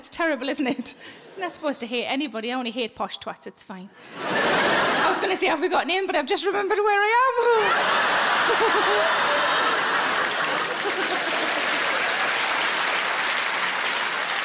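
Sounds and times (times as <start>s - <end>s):
speech: 0.0s - 9.7s
laughter: 4.0s - 5.6s, 7.4s - 13.2s
audience applause at a live stand-up comedy show: 8.0s - 14.4s.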